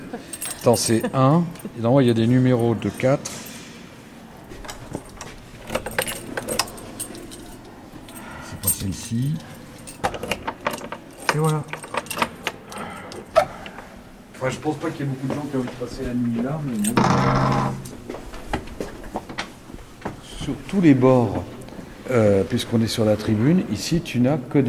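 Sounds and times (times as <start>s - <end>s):
speech: 0.1s - 3.4s, 9.1s - 9.5s, 11.4s - 11.8s, 14.4s - 18.0s, 20.5s - 21.5s, 22.1s - 24.6s
keys jangling on a key ring: 0.1s - 3.7s, 4.7s - 13.4s, 16.7s - 17.0s.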